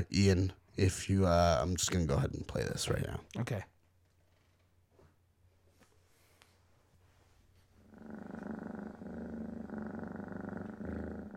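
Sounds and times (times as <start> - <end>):
speech: 0.0 - 3.7
cat purring: 7.8 - 11.3.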